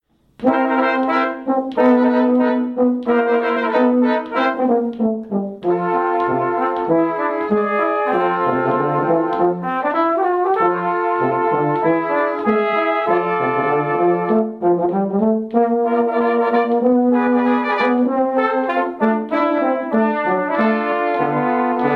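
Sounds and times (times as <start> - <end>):
brass quartet playing a dixie tune: 0.4 - 21.9.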